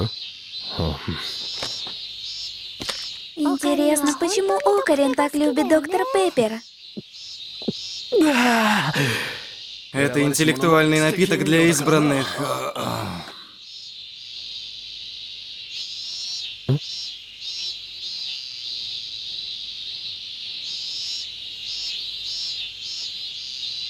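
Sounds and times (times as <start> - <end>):
speech: 0.0 - 1.6, 3.4 - 7.1, 8.2 - 13.3
loud cicadas chirping: 0.0 - 8.1, 13.6 - 23.8
laughter: 10.0 - 13.4.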